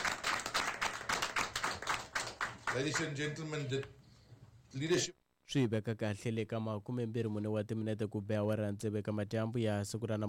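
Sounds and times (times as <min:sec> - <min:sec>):
faint sparse clapping at a formal ceremony: 0:00.0 - 0:03.1
speech: 0:02.8 - 0:04.0, 0:04.7 - 0:10.2.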